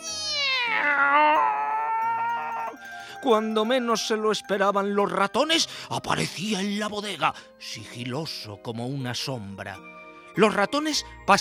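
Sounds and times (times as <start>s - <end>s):
cat meowing: 0.0s - 2.8s
speech: 0.8s - 1.6s, 3.2s - 11.3s.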